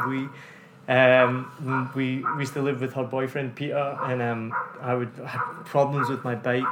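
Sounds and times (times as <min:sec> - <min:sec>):
dogs barking with short repeated yaps: 0:00.0 - 0:00.4, 0:01.1 - 0:03.0, 0:03.7 - 0:06.6
speech: 0:00.0 - 0:06.6.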